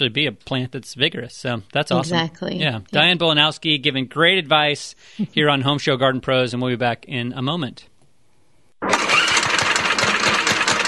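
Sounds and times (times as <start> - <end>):
speech: 0.0 - 7.9
small lawnmower engine starting and running: 8.8 - 10.8.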